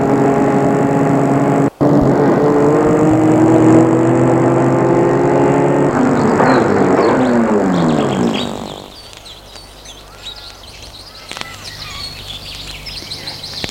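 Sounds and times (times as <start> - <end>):
car engine starting, running and revving: 0.0 - 9.0
faint bird chirps outdoors: 6.0 - 13.6.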